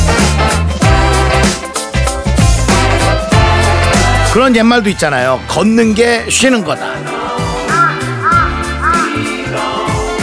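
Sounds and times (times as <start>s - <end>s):
music: 0.0s - 10.2s
speech: 4.4s - 7.1s
crow cawing: 7.7s - 9.2s.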